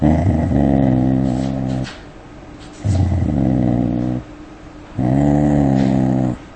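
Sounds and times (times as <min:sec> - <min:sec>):
dog growling at an approaching stranger: 0:00.0 - 0:02.0, 0:02.8 - 0:04.3, 0:05.0 - 0:06.5.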